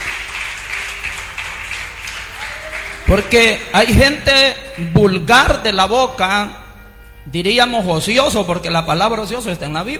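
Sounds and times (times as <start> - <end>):
audience applauding: 0.0 - 3.6
speech: 3.1 - 6.6, 7.2 - 9.9.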